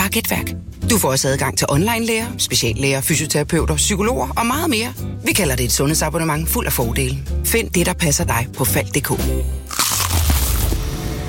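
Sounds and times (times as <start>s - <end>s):
speech: 0.1s - 10.0s
crunchy bite and chewing of a fried chicken burger: 9.7s - 11.1s.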